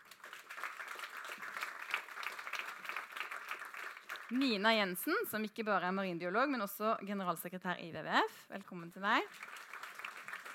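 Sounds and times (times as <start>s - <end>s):
audience applause for a panel member: 0.0s - 4.6s, 9.2s - 10.5s
speech: 4.3s - 9.5s.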